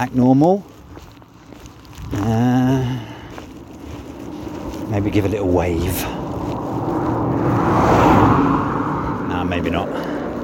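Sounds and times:
speech: 0:00.0 - 0:00.7, 0:02.1 - 0:03.1, 0:04.9 - 0:06.2, 0:09.5 - 0:10.1
car engine and tyre rumble on a road: 0:00.0 - 0:10.4.

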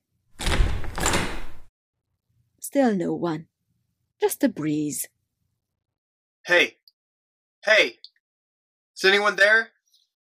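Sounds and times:
door being pulled open with rumbling scrape: 0:00.4 - 0:01.7
speech: 0:02.7 - 0:03.5, 0:04.2 - 0:05.2, 0:06.4 - 0:06.8, 0:07.6 - 0:08.1, 0:09.0 - 0:09.7.

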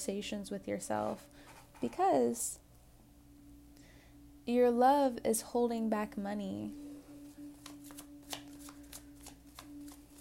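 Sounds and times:
speech: 0:00.0 - 0:02.6, 0:04.5 - 0:06.8
low steady hum: 0:00.0 - 0:10.1
tarot cards being shuffled and drawn: 0:07.5 - 0:10.1.

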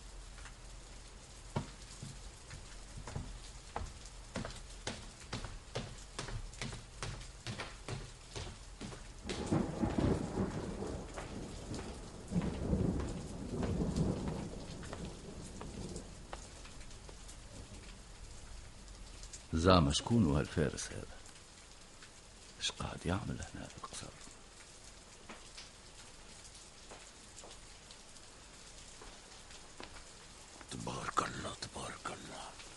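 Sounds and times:
heavy rain pouring with sharp pattering hits: 0:00.0 - 0:32.7
deep rolls of thunder: 0:09.2 - 0:16.3
speech: 0:19.6 - 0:21.2, 0:23.0 - 0:24.1.

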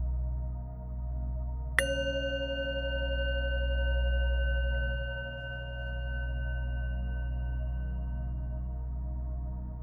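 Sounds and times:
steady low hum: 0:00.0 - 0:09.8
single bell struck and ringing with bright overtones: 0:01.8 - 0:08.0.

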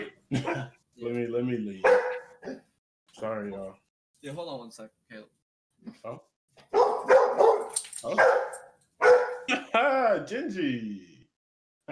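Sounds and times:
speech: 0:00.3 - 0:02.6, 0:03.2 - 0:06.7, 0:08.0 - 0:08.5, 0:09.8 - 0:11.1
dog barking: 0:01.8 - 0:02.6, 0:06.6 - 0:09.5.

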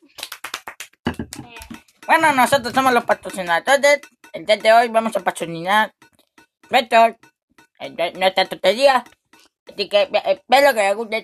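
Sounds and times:
sharp hand claps from a small group: 0:00.0 - 0:02.0
speech: 0:02.1 - 0:06.0, 0:06.7 - 0:11.2.

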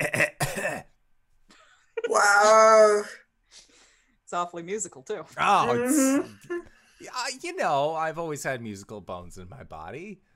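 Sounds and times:
harsh raspy cough: 0:00.0 - 0:01.0
speech: 0:02.2 - 0:03.2, 0:04.3 - 0:10.3.

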